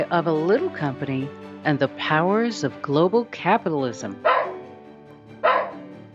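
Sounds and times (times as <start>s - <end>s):
speech: 0.0s - 4.3s
dog barking: 4.2s - 4.6s, 5.4s - 5.8s.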